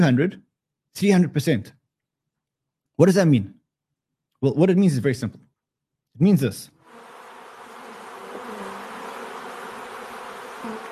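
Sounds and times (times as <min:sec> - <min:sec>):
speech: 0:00.0 - 0:01.8, 0:03.0 - 0:03.6, 0:04.4 - 0:05.4, 0:06.2 - 0:06.8
many bees buzzing together: 0:06.8 - 0:10.8.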